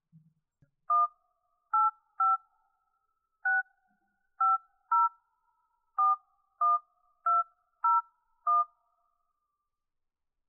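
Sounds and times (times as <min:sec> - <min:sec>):
touch-tone beeps of a phone number being dialed: 0:01.8 - 0:02.4, 0:03.5 - 0:03.7, 0:04.4 - 0:05.1, 0:06.0 - 0:08.7.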